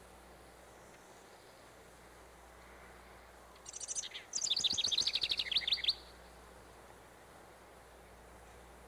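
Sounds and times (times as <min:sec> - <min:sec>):
House Wren singing: 0:00.6 - 0:06.2.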